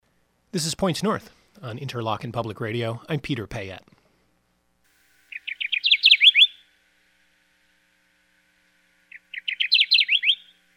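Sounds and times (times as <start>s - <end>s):
faint hum: 0.0s - 10.7s
speech: 0.5s - 4.0s
Kirtland's warbler singing on its nesting grounds: 5.3s - 6.6s, 9.1s - 10.6s.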